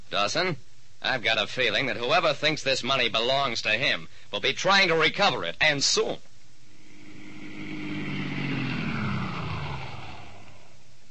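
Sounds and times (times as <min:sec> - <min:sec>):
speech: 0:00.1 - 0:06.3
car engine droning as the vehicle drives past: 0:06.7 - 0:11.0.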